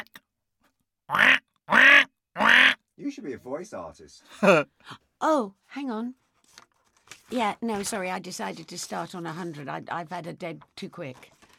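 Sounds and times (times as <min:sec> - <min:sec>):
person imitating sinister duck quacks: 0:00.0 - 0:00.2, 0:01.1 - 0:02.8
speech: 0:03.0 - 0:06.2, 0:07.3 - 0:11.4.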